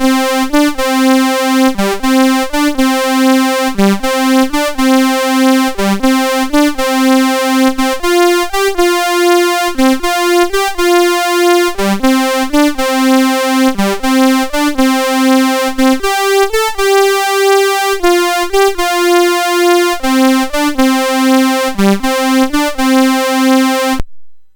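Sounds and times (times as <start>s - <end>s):
Commodore MOS6581R4 chip blues shuffle riff: 0.0s - 24.0s.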